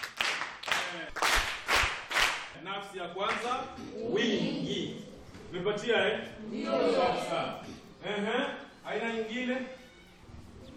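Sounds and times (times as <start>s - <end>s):
students clapping in a classroom: 0.0s - 2.6s, 3.3s - 3.6s
speech: 2.7s - 9.8s.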